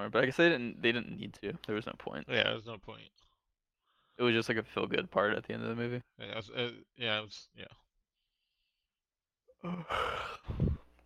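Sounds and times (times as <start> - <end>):
speech: 0.0 - 3.3, 4.2 - 7.8, 9.6 - 10.8
person yawning: 9.5 - 10.9.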